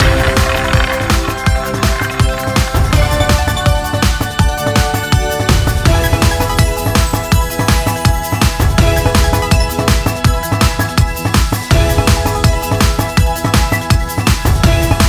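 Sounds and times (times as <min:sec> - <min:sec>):
music: 0:00.0 - 0:15.0.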